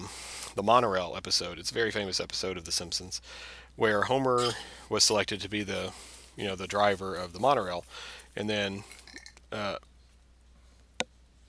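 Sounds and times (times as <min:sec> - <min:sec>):
speech: 0:00.6 - 0:09.9
person burping after a drink: 0:04.4 - 0:04.6.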